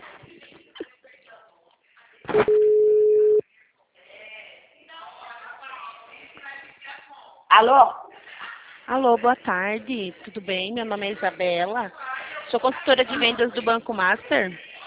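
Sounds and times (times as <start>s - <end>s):
speech: 2.3s - 2.6s, 7.6s - 8.0s, 8.9s - 14.7s
telephone ringback tone while a call is being placed: 2.4s - 3.4s.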